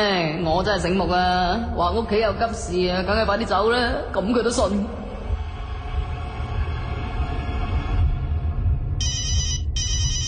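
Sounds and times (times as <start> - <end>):
speech: 0.0 - 5.1
low steady rumble: 0.4 - 10.2
telephone ringing urgently: 9.0 - 10.2.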